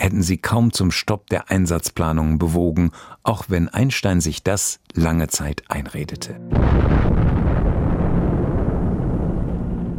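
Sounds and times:
speech: 0.0s - 7.4s
4-tonne uranium atomic bomb exploding over Hiroshima: 6.5s - 9.9s.

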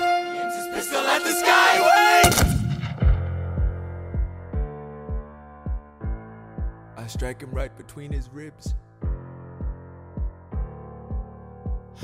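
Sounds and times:
music: 0.0s - 12.0s
speech: 0.8s - 2.4s, 7.2s - 8.9s
pistol shot: 2.2s - 3.3s.

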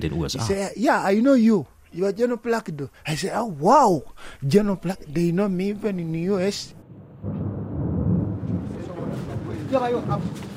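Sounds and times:
speech: 0.0s - 7.4s, 9.7s - 10.5s
rolling thunder during a rainstorm: 6.8s - 10.5s.

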